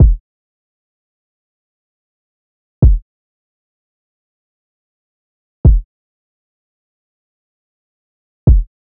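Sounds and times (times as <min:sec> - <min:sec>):
kick drum loop at 85 BPM: 0:00.0 - 0:00.2, 0:02.8 - 0:03.0, 0:05.6 - 0:05.9, 0:08.5 - 0:08.7.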